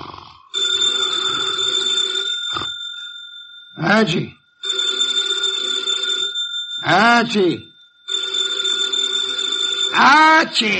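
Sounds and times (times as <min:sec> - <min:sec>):
telephone bell on an office desk ringing: 0:00.4 - 0:10.7
speech: 0:03.8 - 0:04.4, 0:06.9 - 0:07.7, 0:10.0 - 0:10.7.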